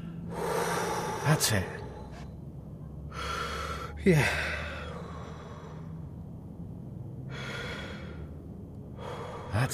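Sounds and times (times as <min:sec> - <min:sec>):
heavy human breathing: 0:00.0 - 0:02.3, 0:03.1 - 0:06.1, 0:07.3 - 0:08.4, 0:09.0 - 0:09.6
speech: 0:01.2 - 0:01.8, 0:04.0 - 0:04.6.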